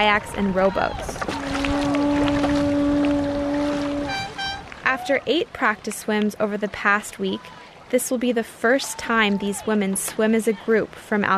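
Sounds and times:
speech: 0.0 - 1.2, 5.0 - 11.3
boat motor droning on the water carrying swimmers: 0.0 - 5.8
water splashing and churning around the boat hull: 0.0 - 11.3.

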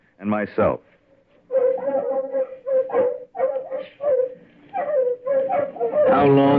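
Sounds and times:
speech: 0.2 - 1.0, 6.1 - 6.5
terriers barking and whimpering in crop fields: 1.4 - 6.5.

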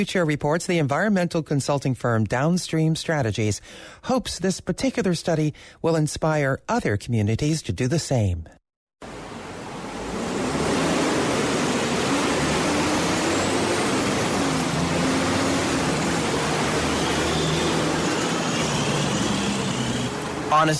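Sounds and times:
speech: 0.0 - 8.6
broad hiss of passing vehicles at a busy intersection: 9.0 - 20.7
engines of cars, buses and heavy trucks rumbling at a busy intersection: 9.0 - 20.7.

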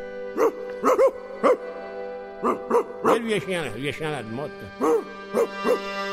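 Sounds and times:
speech: 0.4 - 1.2, 3.3 - 6.0
angry dog barking: 0.4 - 1.6, 2.4 - 3.2, 4.8 - 5.9.

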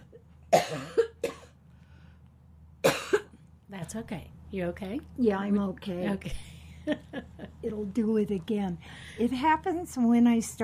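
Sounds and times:
person coughing from haze and smoke: 0.5 - 1.6, 2.8 - 3.4
speech: 3.9 - 7.0, 7.6 - 10.6.

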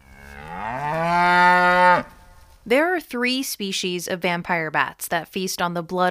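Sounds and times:
cow mooing: 0.0 - 2.2
speech: 2.7 - 6.0.

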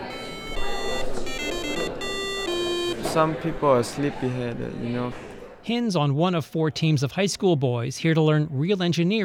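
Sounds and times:
homemade alarm clock ringing with a shrill electronic buzz: 0.0 - 3.3
speech: 3.1 - 9.2.

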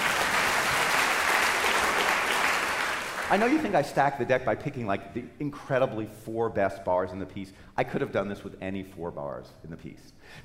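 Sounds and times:
audience applause: 0.0 - 3.7
speech: 3.3 - 10.4.

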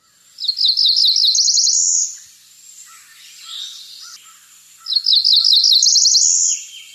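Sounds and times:
Cerulean Warbler singing: 0.0 - 6.9.

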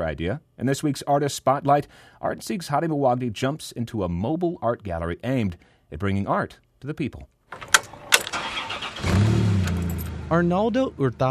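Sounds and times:
speech: 0.1 - 7.7, 10.3 - 11.3
engine of a big white refurbished ice cream truck starting: 7.6 - 11.3.

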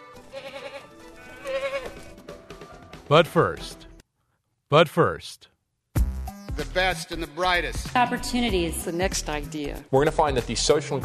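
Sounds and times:
goat bleating with a quavering cry: 0.0 - 2.2
speech: 3.1 - 3.8, 4.7 - 5.5, 6.6 - 11.0.

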